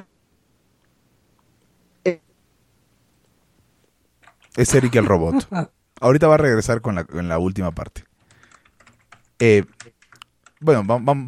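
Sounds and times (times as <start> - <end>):
speech: 2.0 - 2.2, 4.6 - 8.1, 9.4 - 10.0, 10.6 - 11.2
typing on a computer keyboard: 4.2 - 4.6, 8.2 - 10.7.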